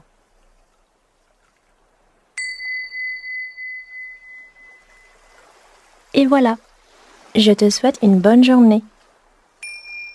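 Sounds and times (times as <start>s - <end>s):
small bell ringing during a children's yoga session: 2.4s - 5.1s, 9.6s - 10.1s
speech: 6.2s - 6.6s, 7.3s - 8.9s.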